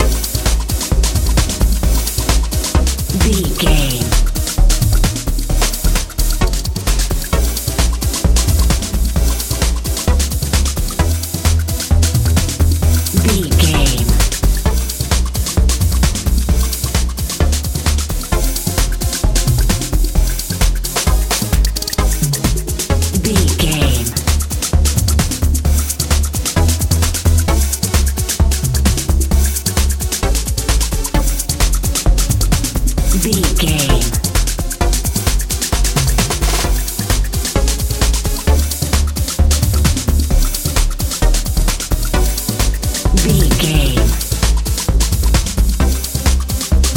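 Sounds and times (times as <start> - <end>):
happy warm techno music: 0.0 - 46.9.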